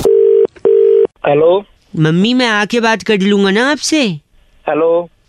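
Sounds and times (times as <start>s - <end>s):
telephone outgoing call tone beeps: 0.1s - 1.1s
speech: 1.3s - 5.2s.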